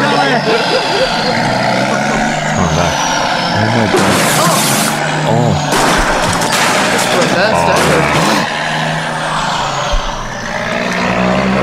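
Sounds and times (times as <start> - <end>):
voice murmuring: 0.0 - 6.3, 7.0 - 11.6
laughter: 0.0 - 8.6, 9.2 - 11.6
large truck engine rumbling and driving off: 0.0 - 11.6.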